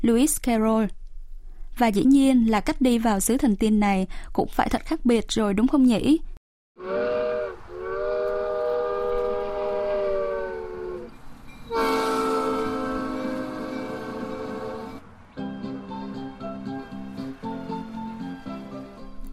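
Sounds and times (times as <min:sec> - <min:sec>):
speech: 0:00.0 - 0:01.0, 0:01.8 - 0:07.2
small two-car tourist train horn blasts: 0:06.8 - 0:15.0.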